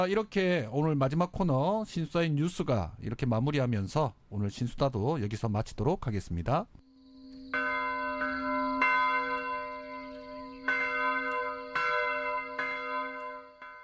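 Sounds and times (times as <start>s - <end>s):
speech: 0.0s - 6.8s
church bell ringing: 7.1s - 13.8s.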